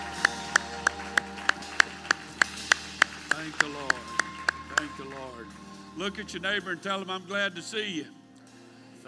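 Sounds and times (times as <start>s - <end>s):
church audience clapping hands in praise: 0.0s - 6.7s
speech: 6.0s - 8.2s.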